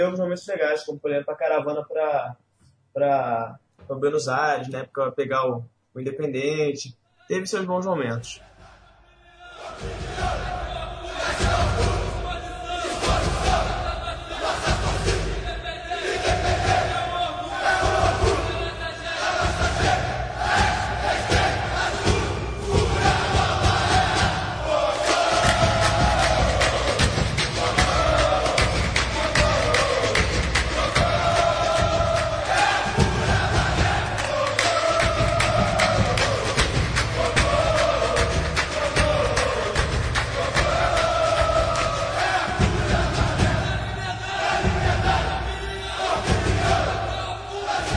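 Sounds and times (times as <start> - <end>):
speech: 0.0 - 8.5
football supporters chanting in stadium stands: 8.3 - 47.9
rhythmic thumping beats: 9.6 - 47.9.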